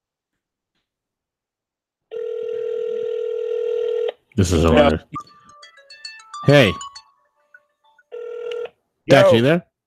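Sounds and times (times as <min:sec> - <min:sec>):
telephone tone of outgoing phone call: 0:02.1 - 0:04.1, 0:05.1 - 0:08.8
speech: 0:04.4 - 0:05.2, 0:06.5 - 0:06.8, 0:09.1 - 0:09.7.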